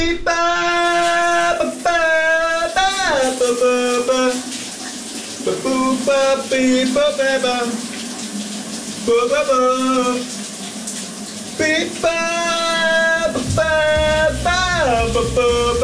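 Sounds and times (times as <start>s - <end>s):
man singing a wordless warbling melody in the shower: 0.0s - 4.5s, 5.5s - 7.8s, 9.1s - 10.3s, 11.6s - 15.8s
shower water running at home: 0.7s - 15.8s.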